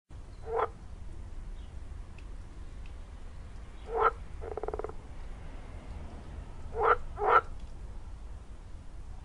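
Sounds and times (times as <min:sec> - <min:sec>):
steady low background noise: 0:00.1 - 0:09.2
frog giving short rasping croaks: 0:00.4 - 0:00.8, 0:03.8 - 0:05.0, 0:06.7 - 0:07.5.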